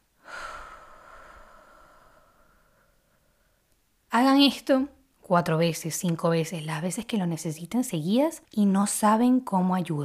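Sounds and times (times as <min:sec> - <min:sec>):
slow deep breath taken as a breathing exercise: 0:00.2 - 0:03.7
speech: 0:04.2 - 0:10.0.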